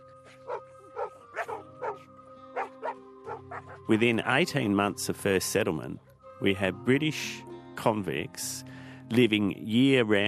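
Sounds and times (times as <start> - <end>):
kangaroo dog barking: 0.5 - 3.8
speech: 3.9 - 10.2.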